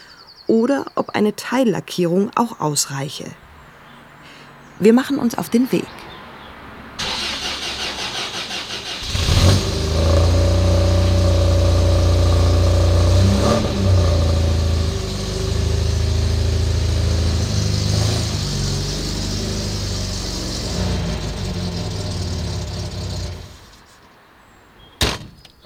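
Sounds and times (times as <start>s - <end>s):
speech: 0.5s - 3.5s, 4.8s - 6.0s
1969 MGB classic car engine starting and idling: 6.7s - 23.9s
brief thump: 25.0s - 25.6s.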